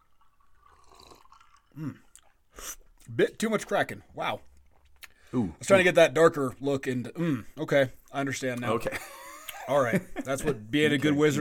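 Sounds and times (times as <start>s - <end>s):
person sipping a drink: 0.0s - 3.1s, 4.5s - 5.4s
wet gulp: 0.0s - 3.2s, 4.4s - 5.4s
speech: 1.8s - 2.1s, 3.1s - 4.5s, 5.3s - 11.4s
faint mouth clicks: 4.8s - 5.3s.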